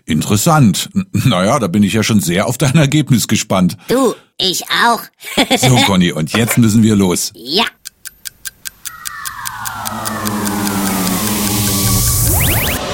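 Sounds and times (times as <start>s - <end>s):
speech: 0.1s - 7.8s
rhythmic clicks of an S-Bahn commuter train: 7.7s - 12.8s
S-Bahn commuter train braking tones: 7.9s - 12.8s
S-Bahn commuter train electric motor whine: 9.5s - 12.8s.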